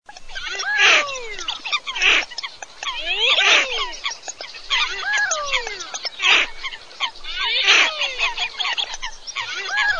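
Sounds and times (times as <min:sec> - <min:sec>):
coot calling: 0:00.1 - 0:09.9.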